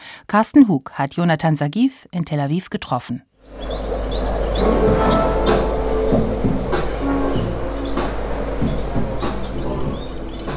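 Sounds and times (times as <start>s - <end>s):
speech: 0.3s - 3.7s
birds chirping and tweeting at a restaurant and workspace in Tel Aviv: 3.4s - 10.5s
electronic track with bass drone, synth lines and percussive hits: 4.6s - 10.5s.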